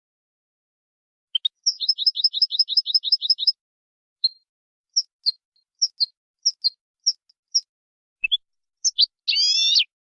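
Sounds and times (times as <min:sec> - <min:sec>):
European goldfinch clean-song training song: 0:01.3 - 0:03.6, 0:04.2 - 0:09.9.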